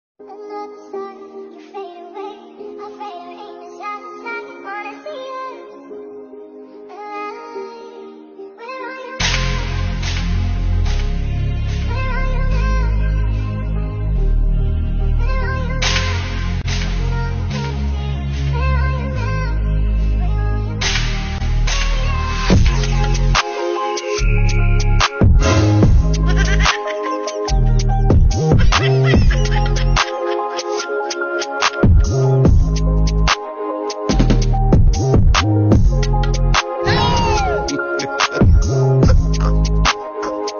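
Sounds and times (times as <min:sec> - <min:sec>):
background music: 0:00.2 - 0:40.5
laughter sound effect: 0:26.2 - 0:27.5, 0:28.6 - 0:30.9.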